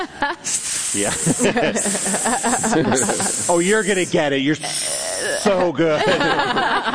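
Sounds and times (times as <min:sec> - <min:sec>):
laughter: 0:00.0 - 0:03.6, 0:05.4 - 0:06.9
speech: 0:00.0 - 0:06.9
human voice imitating a snake's hiss: 0:00.4 - 0:05.7.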